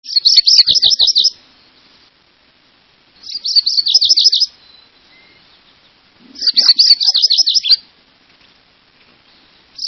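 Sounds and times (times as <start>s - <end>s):
MacGillivray's warbler singing: 0.0s - 2.0s, 3.2s - 7.9s, 9.2s - 9.8s.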